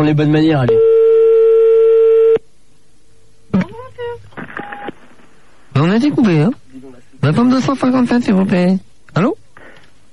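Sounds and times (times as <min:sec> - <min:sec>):
speech: 0:00.0 - 0:00.9, 0:05.8 - 0:06.6, 0:07.2 - 0:09.4
telephone ringing: 0:00.7 - 0:02.4.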